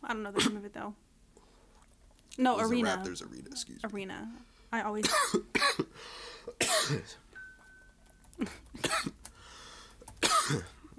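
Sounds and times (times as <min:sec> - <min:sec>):
speech: 0:00.1 - 0:01.1, 0:02.3 - 0:07.2, 0:08.4 - 0:09.2, 0:10.5 - 0:10.9
person coughing while recovering from a coughing fit: 0:05.0 - 0:07.2, 0:08.4 - 0:09.2, 0:10.2 - 0:10.9.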